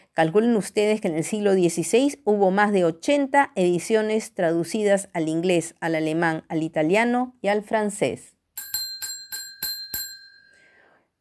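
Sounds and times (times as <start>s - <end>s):
speech: 0.2s - 8.3s
bell ringing to end class: 8.6s - 10.8s.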